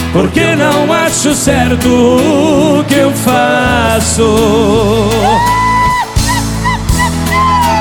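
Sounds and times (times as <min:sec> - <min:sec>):
speech: 0:00.2 - 0:06.0
audience of men shouting and cheering: 0:05.0 - 0:07.8.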